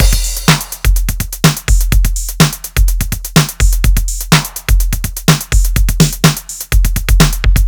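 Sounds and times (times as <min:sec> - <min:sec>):
drum loops: 0:00.0 - 0:07.6.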